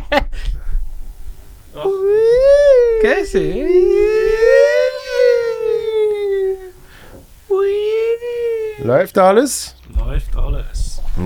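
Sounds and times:
laughter: 1.7 - 8.9
wailing siren: 1.8 - 6.8
speech: 3.0 - 3.9, 8.8 - 11.2.

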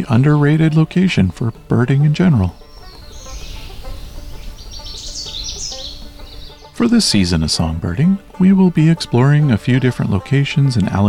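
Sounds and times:
speech: 0.0 - 2.6, 6.8 - 11.0
hermit thrush singing in Allegheny National Forest: 0.0 - 11.0.

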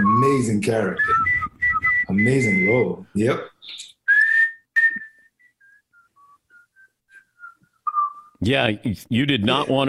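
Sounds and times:
person whistling a simple nursery-rhyme melody: 0.0 - 2.9, 4.1 - 8.3
speech: 0.2 - 1.3, 2.1 - 3.9, 8.4 - 9.8.

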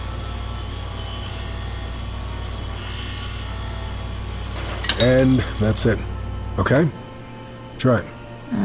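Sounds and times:
grinding machine shaping a workpiece blank along a template: 0.0 - 5.9
speech: 5.0 - 7.0, 7.8 - 8.6.

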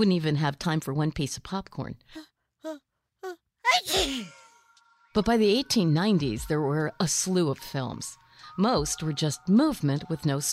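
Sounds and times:
speech: 0.0 - 4.4, 5.2 - 10.5
person sneezing: 3.7 - 4.5.

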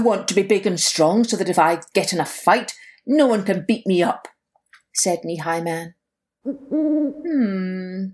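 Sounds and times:
speech: 0.0 - 4.3, 5.0 - 8.1
owl hooting: 6.4 - 7.7.

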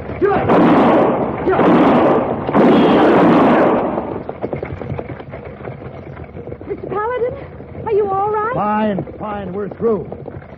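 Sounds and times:
gunshots fired at a fleeing man: 0.0 - 5.7
lower scattered rattle of fainter noise: 0.0 - 10.5
speech: 0.2 - 0.8, 8.9 - 10.2.

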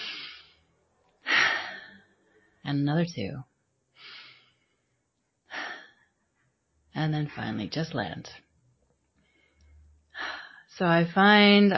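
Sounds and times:
breath inhaled through the nose and out through the mouth: 0.0 - 2.6, 3.9 - 6.4, 9.1 - 10.7
speech: 2.7 - 3.5, 7.0 - 8.4, 10.8 - 11.7.

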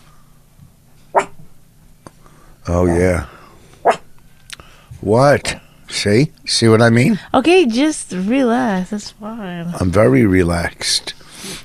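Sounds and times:
short sharp dog bark: 1.2 - 1.4
speech: 2.6 - 3.3, 5.0 - 11.2.

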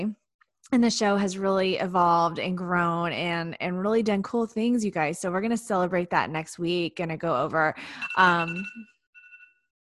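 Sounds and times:
speech: 0.0 - 8.9
phone alarm electronic tone: 7.9 - 9.7.

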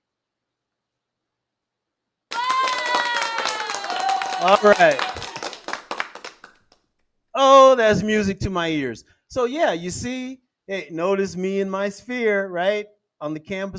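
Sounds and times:
hand clapping: 2.3 - 6.8
laughter: 2.5 - 5.6
speech: 4.4 - 5.0, 7.4 - 13.7.

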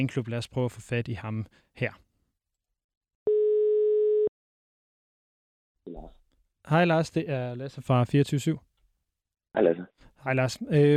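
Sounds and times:
speech: 0.0 - 2.1, 5.8 - 8.7, 9.5 - 10.9
telephone ringback tone of an outgoing call: 3.3 - 4.3.

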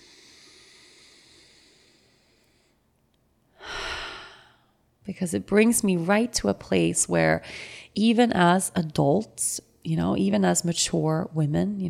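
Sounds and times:
deep breath: 0.0 - 2.9, 3.5 - 4.8, 7.4 - 8.0
speech: 5.1 - 11.8.

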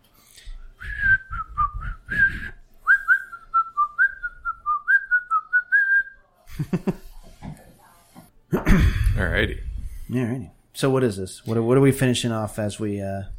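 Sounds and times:
person whistling a short bouncy melody: 0.8 - 6.2
speech: 6.7 - 7.1, 8.7 - 13.3.

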